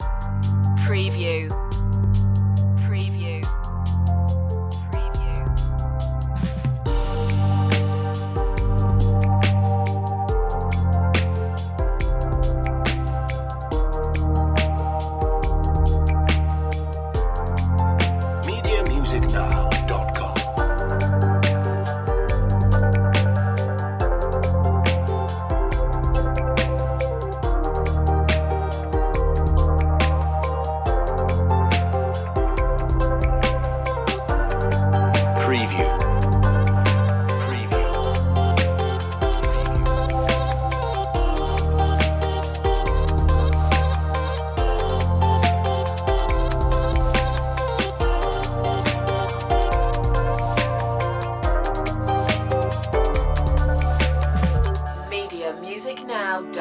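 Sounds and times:
deep drums in a chill out electro track: 0.0 - 2.7, 3.4 - 13.1, 17.2 - 23.4, 27.4 - 40.6, 42.6 - 55.0
synth bass in a chill out electro track: 0.0 - 55.2.

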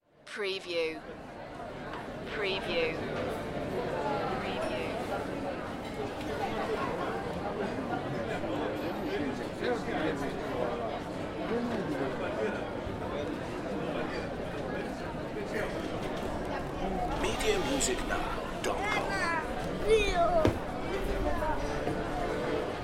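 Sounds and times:
city street ambience: 0.1 - 22.8.

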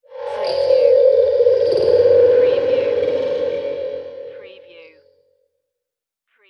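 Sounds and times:
spiritual alien sound: 0.0 - 5.2.

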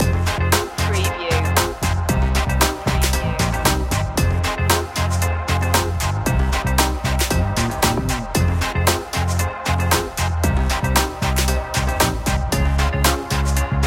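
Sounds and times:
cool style music loop: 0.0 - 13.8.

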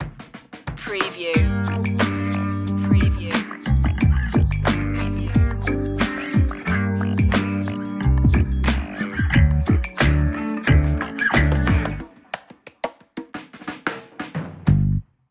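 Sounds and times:
funky sweet relaxing music: 1.4 - 12.5.

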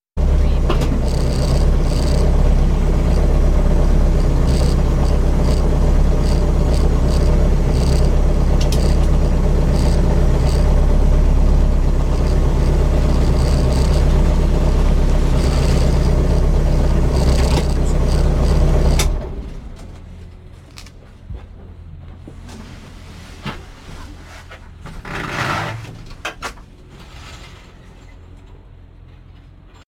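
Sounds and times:
rally car engine cutting off, heard from inside: 0.2 - 20.1.

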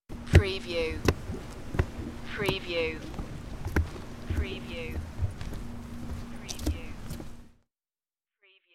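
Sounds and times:
boots on wood: 0.2 - 7.6.

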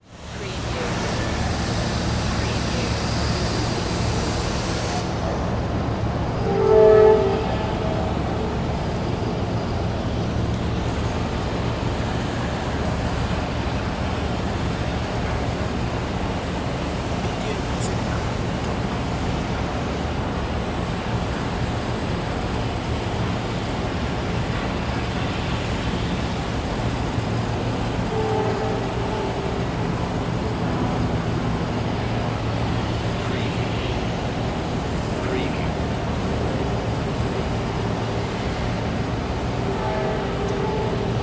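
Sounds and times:
urban harbor marina ambience: 0.0 - 41.2
boat horns in a marina harbor: 6.3 - 9.8, 27.6 - 31.7, 39.4 - 41.2.

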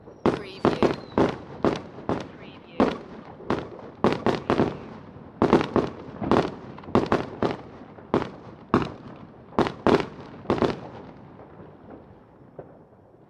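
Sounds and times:
fireworks whistle: 0.0 - 1.4
fireworks bangs: 0.0 - 13.2.

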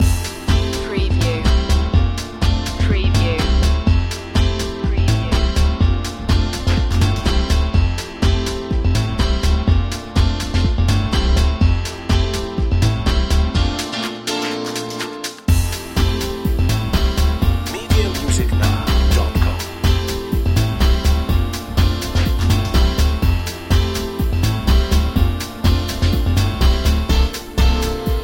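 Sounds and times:
vintage beats loop: 0.0 - 28.2.

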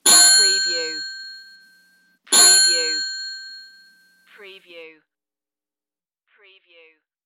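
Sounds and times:
antique bicycle bell ringing: 0.0 - 4.2.

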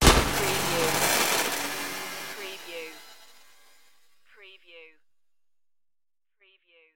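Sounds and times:
abstract digital morph: 0.0 - 4.0.

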